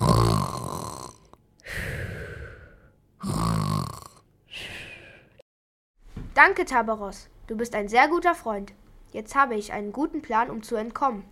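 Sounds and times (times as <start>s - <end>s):
loud snoring after falling asleep: 0.0s - 4.2s
speech: 6.4s - 11.2s.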